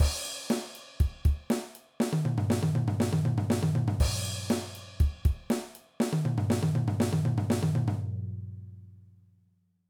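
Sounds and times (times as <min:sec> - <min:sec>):
drum fill: 0:00.0 - 0:08.0.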